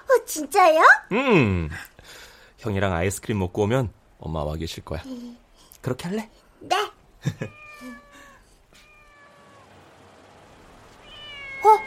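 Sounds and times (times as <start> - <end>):
faint noise: 0.0 - 11.8
speech: 0.3 - 1.9, 2.6 - 7.9
laughter: 7.2 - 7.6
cat meowing: 7.3 - 9.8, 11.0 - 11.8.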